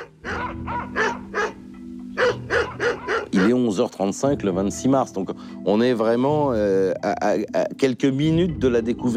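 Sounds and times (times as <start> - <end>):
distant dogs barking in an emergency call recording: 0.0 - 3.8
speech: 3.4 - 9.1.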